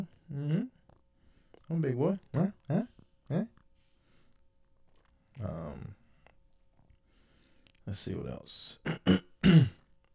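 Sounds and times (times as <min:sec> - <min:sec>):
speech: 0:01.7 - 0:03.5, 0:07.9 - 0:09.7
phlegmy throat clearing: 0:08.8 - 0:09.9.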